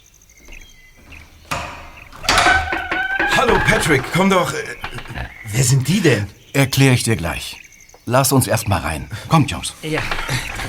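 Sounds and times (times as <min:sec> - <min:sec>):
door click: 0:00.4 - 0:05.7
door creaking open: 0:00.4 - 0:05.9, 0:09.8 - 0:10.6
speech: 0:03.7 - 0:04.8, 0:05.5 - 0:10.6.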